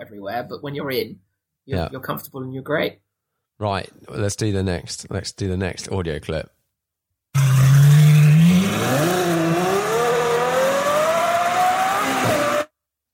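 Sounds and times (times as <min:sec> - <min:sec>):
speech: 0:00.0 - 0:03.0, 0:03.6 - 0:06.6, 0:08.8 - 0:09.2
Ferrari V12 engine idling then revving up: 0:07.4 - 0:12.7.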